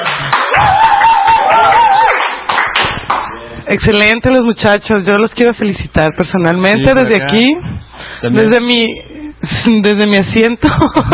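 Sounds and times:
applause at an online electronic music festival: 0:00.0 - 0:03.3
speech: 0:03.7 - 0:11.1.

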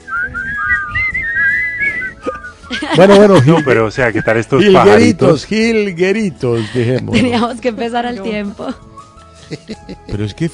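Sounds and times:
person whistling a melody: 0:00.0 - 0:04.7
laughter: 0:02.1 - 0:05.3, 0:06.5 - 0:07.6, 0:09.4 - 0:10.3
speech: 0:02.9 - 0:08.9, 0:09.5 - 0:10.5.

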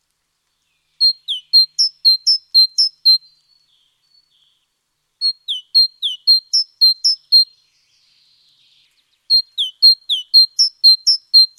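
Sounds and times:
great tit Parus major major singing: 0:01.0 - 0:04.4, 0:05.2 - 0:07.6, 0:09.3 - 0:11.5.

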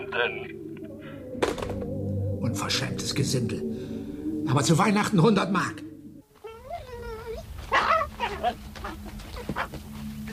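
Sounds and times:
speech: 0:00.1 - 0:00.7, 0:01.4 - 0:03.9, 0:04.5 - 0:05.9
dachshund whining and barking: 0:06.5 - 0:09.7.

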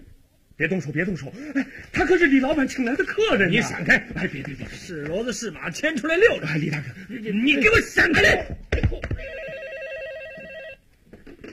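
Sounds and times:
speech: 0:00.6 - 0:09.3
telephone ringing with an electronic warbling trill: 0:09.2 - 0:10.9.

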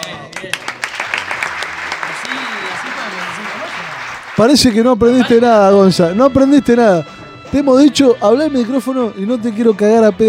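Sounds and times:
audience applause: 0:00.3 - 0:04.9
speech: 0:04.4 - 0:10.2.

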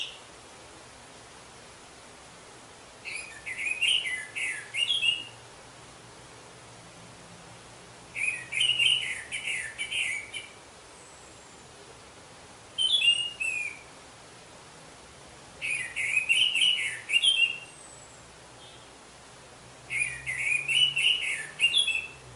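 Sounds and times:
orange-headed thrush singing scratchy twittering phrases: 0:00.0 - 0:00.4, 0:02.9 - 0:05.5, 0:08.0 - 0:12.0, 0:12.6 - 0:14.1, 0:15.6 - 0:19.1, 0:19.8 - 0:22.3
low hiss: 0:00.0 - 0:22.3.

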